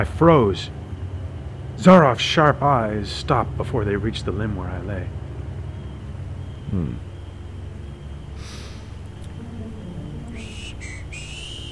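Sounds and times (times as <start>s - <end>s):
speech: 0.0s - 0.8s, 1.8s - 5.2s, 6.7s - 7.0s
steady low rumble: 0.0s - 11.7s
man whistling a tune: 10.3s - 11.7s.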